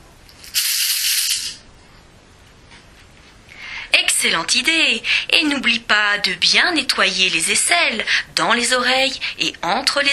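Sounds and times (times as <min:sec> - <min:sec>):
shower spray hissing: 0:00.4 - 0:01.6
speech: 0:04.2 - 0:10.1.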